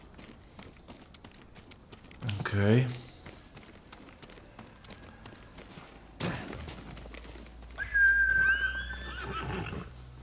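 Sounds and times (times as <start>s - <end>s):
speech: 2.5s - 3.0s
horse whinnying: 7.8s - 9.9s.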